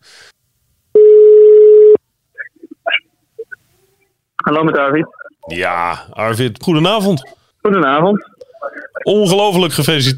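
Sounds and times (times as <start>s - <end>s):
telephone ringing tone while calling someone: 1.0s - 2.0s
speech: 4.5s - 8.3s, 9.0s - 10.1s.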